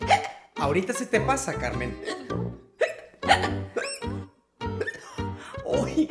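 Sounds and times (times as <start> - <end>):
person hiccuping: 0.0 - 0.5, 2.8 - 4.2
speech: 0.6 - 2.4.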